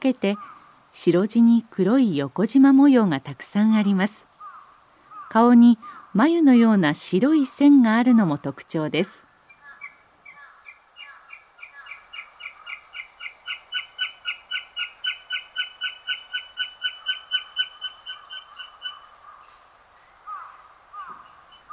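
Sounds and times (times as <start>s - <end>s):
speech: 0.0s - 4.3s, 5.3s - 9.2s
northern goshawk brief wailing calls: 9.6s - 21.7s.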